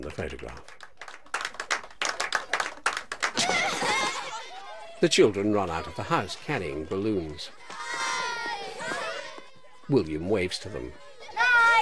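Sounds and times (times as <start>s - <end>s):
speech: 0.0s - 0.8s, 5.0s - 7.6s, 9.9s - 11.0s
applause from a group of people: 0.0s - 4.4s, 5.0s - 6.7s
laughter: 2.4s - 11.8s.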